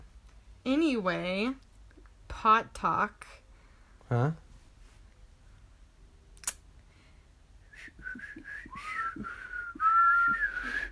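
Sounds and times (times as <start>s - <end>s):
speech: 0.7s - 1.7s, 2.4s - 3.4s, 4.1s - 4.4s
sharp click: 6.4s - 6.6s
person attempting to whistle: 7.7s - 10.9s.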